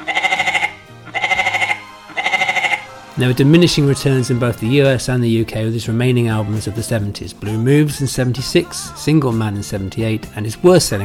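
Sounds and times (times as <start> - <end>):
goat bleating: 0.0 - 3.1
speech: 3.2 - 11.0.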